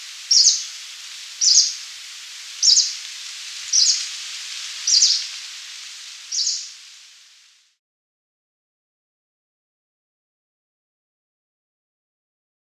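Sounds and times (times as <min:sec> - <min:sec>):
green warbler short high calls: 0:00.0 - 0:07.5
soft steady hiss: 0:00.0 - 0:07.8.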